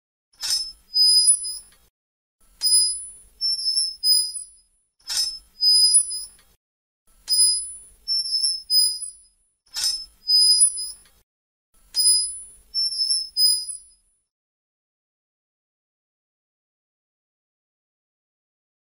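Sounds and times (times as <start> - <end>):
metal swing on chains or ropes squeaking while swaying in the wind: 0.4 - 1.7, 2.6 - 6.4, 7.3 - 11.1, 12.0 - 13.9.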